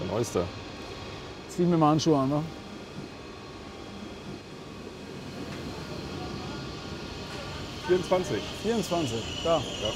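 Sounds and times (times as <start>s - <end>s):
speech: 0.2s - 0.6s, 1.6s - 2.6s, 7.9s - 9.9s
train idling at a station platform: 2.8s - 9.9s
indistinct voices chattering: 5.8s - 9.9s.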